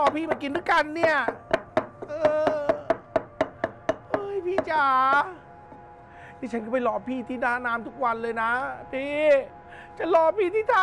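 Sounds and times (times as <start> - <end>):
speech: 0.0 - 2.4, 4.4 - 5.4, 6.4 - 10.8
pestle pounding chili paste in a mortar: 0.0 - 5.2.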